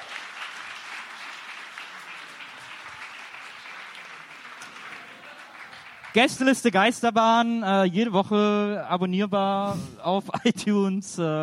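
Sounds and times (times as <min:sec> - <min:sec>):
audience applause: 0:00.0 - 0:06.7
speech: 0:06.2 - 0:11.4.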